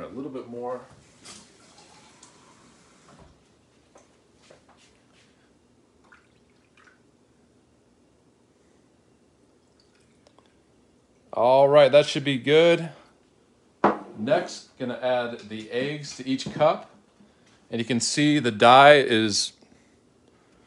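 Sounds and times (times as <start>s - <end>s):
speech: 0.5s - 1.4s, 11.4s - 13.0s, 14.3s - 16.9s, 17.7s - 19.6s
water pouring into cups: 1.2s - 3.1s, 6.0s - 7.2s, 9.6s - 10.6s.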